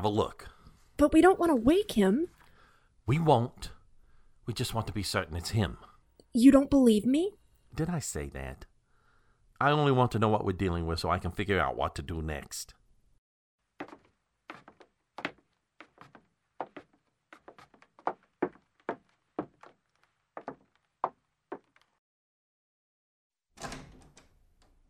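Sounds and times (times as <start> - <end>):
speech: 0.0 - 2.4, 3.1 - 3.8, 4.5 - 8.7, 9.6 - 12.8
wooden door creaking and clicking as it is opened slowly: 23.6 - 24.8.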